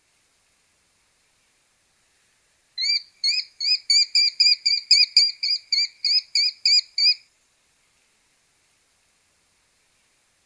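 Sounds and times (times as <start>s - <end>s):
red-thighed sparrowhawk calling: 2.8s - 7.2s.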